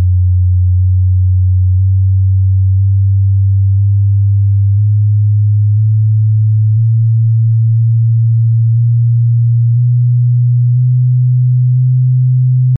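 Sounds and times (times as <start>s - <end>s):
bass voice singing mixed ascending microtonal scales: 0.2s - 12.7s.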